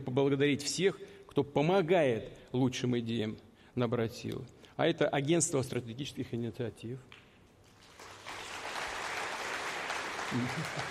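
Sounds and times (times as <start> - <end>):
speech: 0.2 - 7.2, 10.3 - 10.8
large crowd applauding: 7.7 - 10.8.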